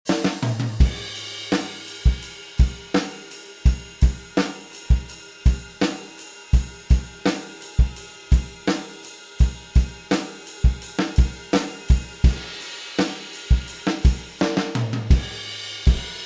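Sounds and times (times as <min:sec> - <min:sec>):
dry drum kit: 0:00.0 - 0:16.2.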